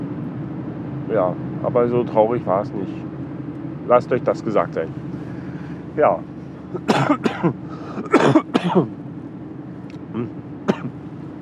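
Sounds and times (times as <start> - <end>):
speech: 1.1 - 3.1, 3.9 - 5.1, 6.0 - 9.0, 10.2 - 11.0
harsh coughing: 6.7 - 8.9, 10.7 - 11.0
soft throat clearing: 6.8 - 8.9, 10.1 - 11.0.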